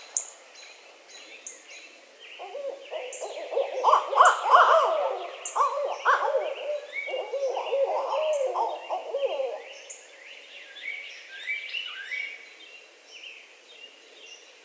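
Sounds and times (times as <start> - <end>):
barred owls cackling and hooting: 2.4 - 9.8.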